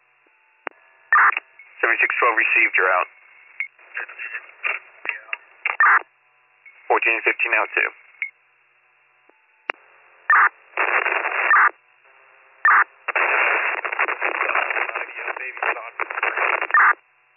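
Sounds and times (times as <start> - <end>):
crackling static-heavy radio transmissions: 0.6 - 6.1, 6.8 - 8.2, 9.3 - 17.3
garbled voices in radio static: 1.2 - 3.1, 3.8 - 6.0, 6.8 - 8.0, 12.7 - 17.0
speech: 1.2 - 3.2, 7.0 - 8.0.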